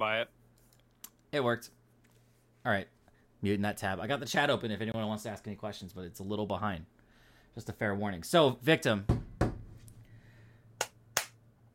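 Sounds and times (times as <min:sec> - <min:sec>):
speech: 0:00.0 - 0:00.4, 0:01.3 - 0:01.8, 0:02.6 - 0:09.2
hand claps: 0:10.8 - 0:11.4.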